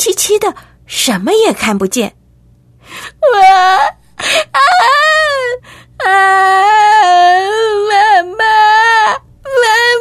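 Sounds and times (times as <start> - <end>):
speech: 0.0 - 2.2, 3.1 - 9.2
frightened five-year-old girl crying in a dark room: 3.0 - 10.0.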